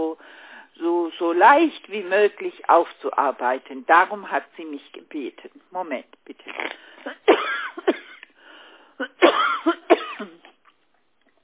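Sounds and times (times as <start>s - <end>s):
speech: 1.3s - 6.8s
harsh breathy coughing: 6.6s - 8.3s, 9.0s - 10.6s.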